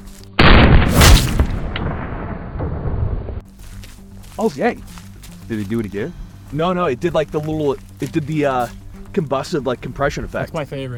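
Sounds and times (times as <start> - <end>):
pistol shot firing a 40 grain round into a gel block: 0.4 - 2.8
speech: 4.4 - 10.9.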